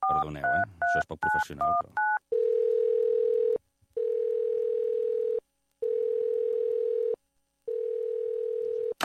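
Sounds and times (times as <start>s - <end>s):
speech: 0.1s - 2.0s
telephone line tones while a call is placed: 2.0s - 7.2s, 7.7s - 9.0s.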